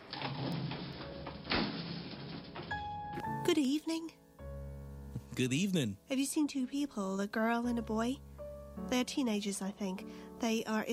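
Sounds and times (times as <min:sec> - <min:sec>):
elevator doors sliding open with a rumble and whooshing hum: 0:00.0 - 0:02.9
speech: 0:03.4 - 0:04.2, 0:05.4 - 0:10.9.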